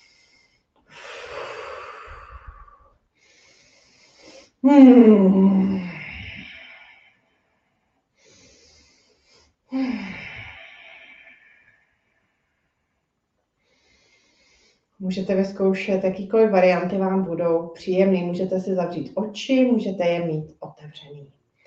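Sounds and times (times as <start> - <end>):
deep breathing in and out through the nose or mouth: 0.0 - 4.6, 5.2 - 7.5, 8.1 - 15.0
speech: 4.6 - 5.6, 15.1 - 21.6
low voiced sigh on an exhale: 4.6 - 6.7, 9.7 - 11.0.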